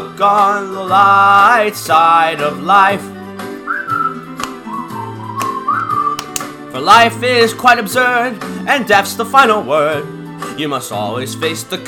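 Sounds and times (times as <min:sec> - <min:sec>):
speech: 0:00.2 - 0:03.2, 0:06.8 - 0:11.8
person whistling a bright bouncy melody: 0:03.5 - 0:06.4.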